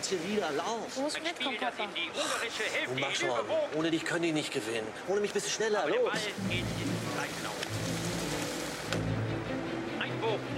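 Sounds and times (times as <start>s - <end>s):
speech: 0.1s - 8.0s
heavy rain pouring on a football stadium in Bern during a match: 6.2s - 9.7s.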